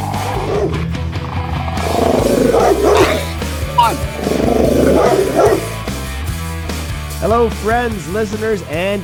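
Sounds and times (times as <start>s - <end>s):
several hounds barking, snarling and growling: 0.0s - 6.9s
speech: 7.3s - 9.0s.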